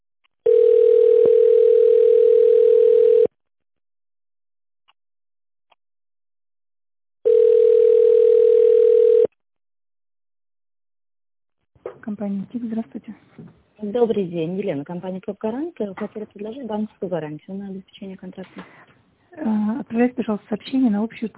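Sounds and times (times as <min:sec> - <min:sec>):
telephone ringback tone while call is transferred: 0:00.5 - 0:03.3, 0:07.2 - 0:09.3
speech: 0:12.2 - 0:21.3.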